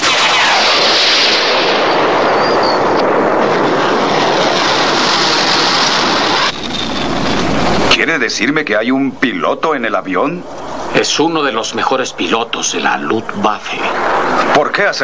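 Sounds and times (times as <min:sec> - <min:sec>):
cannon fire barrage from projectile launchers: 0:00.0 - 0:07.9
speech: 0:08.1 - 0:15.0.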